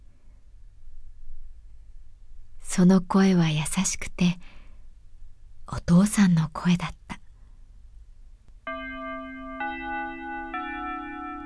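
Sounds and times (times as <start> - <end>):
speech: 2.8 - 4.6, 5.7 - 7.2
chime ringing: 8.7 - 11.4.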